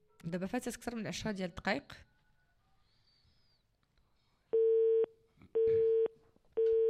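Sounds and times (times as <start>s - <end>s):
speech: 0.2s - 2.1s
telephone busy signal: 4.6s - 6.8s.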